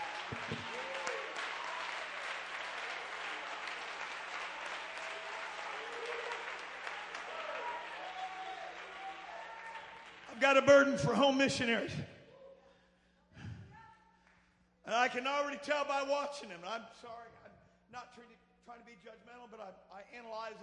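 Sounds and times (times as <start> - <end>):
large crowd clapping in applause: 0.0 - 11.8
speech: 0.3 - 0.8, 10.4 - 12.1, 15.2 - 20.6.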